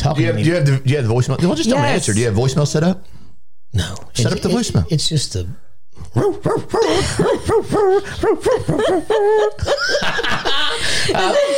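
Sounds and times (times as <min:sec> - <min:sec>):
speech: 0:00.0 - 0:11.5
dogs barking a bouncy holiday melody: 0:06.2 - 0:08.7
people laughing and snickering: 0:06.8 - 0:11.5.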